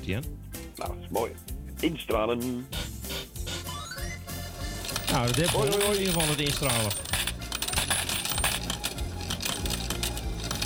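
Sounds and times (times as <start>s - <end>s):
speech: 0.0s - 2.9s, 5.1s - 7.2s
coins dropping: 4.6s - 10.6s.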